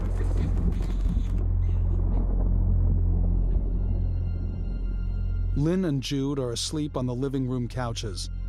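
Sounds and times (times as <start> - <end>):
thunder rumbling during a night thunderstorm: 0.0 - 4.8
speech: 5.6 - 8.4.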